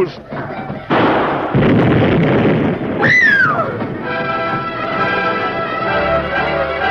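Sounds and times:
speech: 0.0s - 0.6s
loud explosion rumbling: 0.9s - 6.8s
descending whistle: 3.0s - 3.8s.

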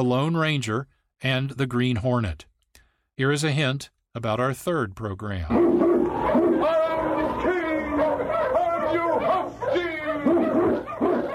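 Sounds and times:
speech: 0.0s - 2.5s, 3.2s - 5.8s
pack of Eskimo sled dogs in the Yukon barking and howling: 5.5s - 11.3s.

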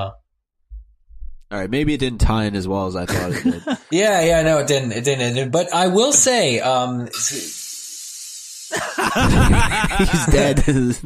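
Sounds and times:
speech: 0.0s - 0.2s, 1.5s - 7.6s, 8.7s - 11.0s
laughter: 3.1s - 4.0s, 8.7s - 11.0s
sharp snake-like hiss: 7.2s - 9.0s.

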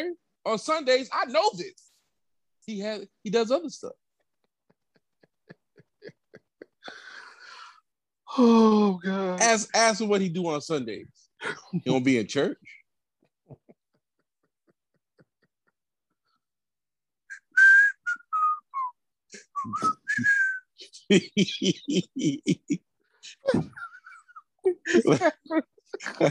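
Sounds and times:
speech: 0.0s - 1.9s, 2.6s - 4.0s, 8.3s - 12.8s, 19.6s - 20.4s, 21.1s - 23.8s, 24.6s - 26.2s
laughter: 4.3s - 7.2s, 13.2s - 15.8s, 21.0s - 26.2s
person whistling a short wavering tune of sliding notes: 17.3s - 18.9s, 19.5s - 20.8s.

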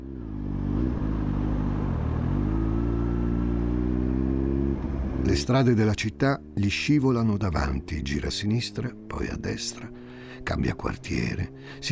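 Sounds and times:
motorcycle engine revving through the gears and pulling away: 0.0s - 11.8s
speech: 5.3s - 11.8s.

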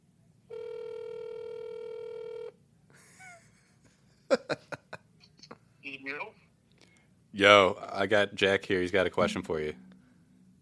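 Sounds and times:
phone ringtone through a speakerphone: 0.5s - 2.6s
laughter: 2.9s - 5.1s
speech: 7.4s - 9.8s.

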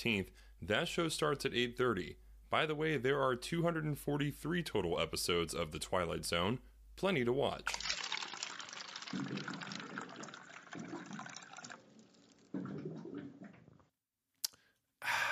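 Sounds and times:
speech: 0.0s - 7.8s
water pouring from a water cooler spout: 7.6s - 13.8s
glugging gurgles of air bubbles rising through a water cooler jug: 7.7s - 13.9s.

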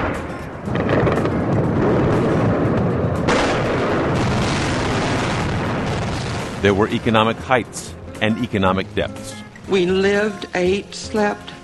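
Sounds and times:
gunfire in a city: 0.0s - 6.7s
speech: 6.6s - 11.6s.

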